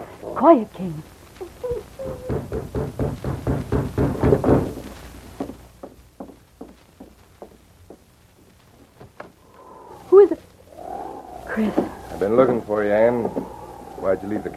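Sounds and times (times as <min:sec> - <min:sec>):
speech: 0:00.3 - 0:01.2, 0:11.6 - 0:14.5
knocking thuds: 0:02.1 - 0:08.1
heavy footsteps approaching a cabin: 0:04.6 - 0:14.5.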